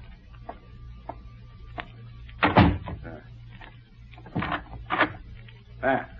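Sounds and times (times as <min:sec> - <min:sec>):
low steady hum: 0:00.0 - 0:06.1
door swinging shut with a solid thud: 0:02.4 - 0:03.1.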